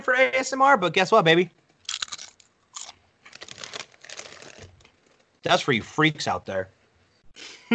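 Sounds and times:
speech: 0.0 - 1.6, 5.5 - 6.8
potato chips crunched and chewed against a microphone: 1.8 - 5.3.

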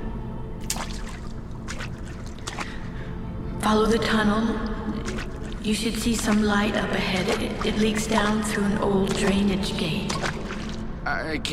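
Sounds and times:
feet stepping down into water: 0.6 - 3.0, 4.9 - 10.9
speech: 3.7 - 5.0, 5.6 - 10.4, 11.1 - 11.5.

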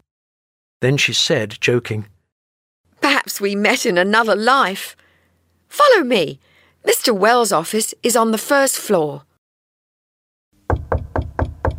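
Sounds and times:
speech: 0.8 - 2.2, 3.2 - 5.0, 5.7 - 9.3
knuckles knocking on a headmaster's office door: 10.7 - 11.7.

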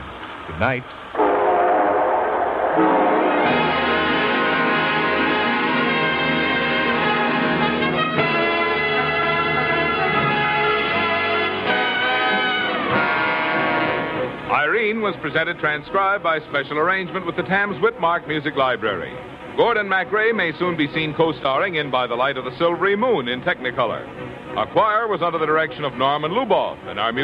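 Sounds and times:
rumble of a train getting under way: 0.0 - 27.2
speech: 0.5 - 1.2, 2.8 - 3.6, 14.5 - 27.2
train horn blaring in long sustained chords: 1.2 - 14.9.

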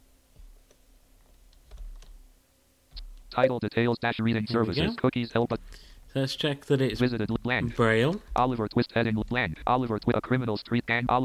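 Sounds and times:
computer keyboard key presses: 0.7 - 2.2
speech: 3.4 - 11.2.

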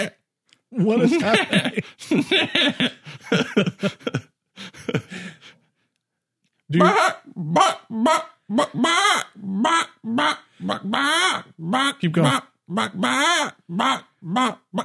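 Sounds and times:
speech: 0.0 - 4.2, 6.7 - 14.8
laughter: 0.8 - 5.6
person imitating a chicken with squawking clucks: 6.7 - 14.8.

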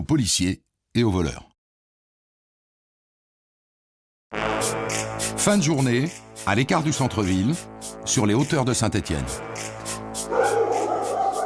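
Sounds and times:
speech: 0.1 - 1.5, 4.6 - 10.3
several police dogs barking: 10.2 - 11.4.

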